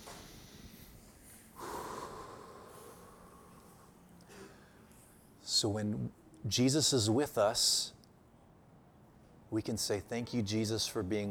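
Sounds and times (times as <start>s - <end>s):
faint hiss: 0.0s - 11.2s
deep breath inhale: 0.1s - 4.9s
speech: 5.6s - 8.0s, 9.5s - 11.2s.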